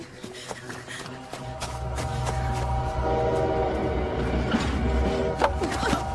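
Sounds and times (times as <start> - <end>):
train rumbling past behind a hill: 1.1 - 6.1
sustained tonal train horn blasts: 1.8 - 6.1.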